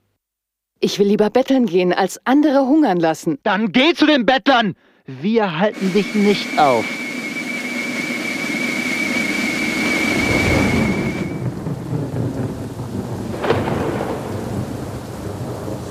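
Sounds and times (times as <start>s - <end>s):
speech: 0.8s - 7.0s
thin steady whistle-like tone: 5.7s - 11.5s
heavy continuous rain in a thunderstorm: 5.8s - 15.8s
deep rolling thunder with sharp crack: 8.4s - 15.8s.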